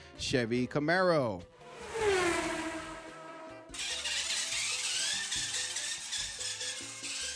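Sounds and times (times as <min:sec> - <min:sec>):
speech: 0:00.2 - 0:01.5
remote-control toy car electric motor whining: 0:01.8 - 0:07.3.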